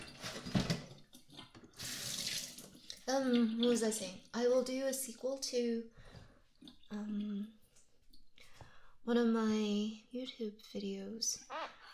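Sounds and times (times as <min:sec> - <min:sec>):
water running and draining in a sink: 0:00.0 - 0:05.0
speech: 0:03.1 - 0:06.1, 0:06.9 - 0:07.6, 0:09.0 - 0:11.6.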